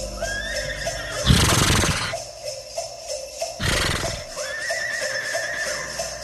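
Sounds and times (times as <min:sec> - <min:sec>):
horse whinnying: 0:00.2 - 0:02.2, 0:03.6 - 0:06.1.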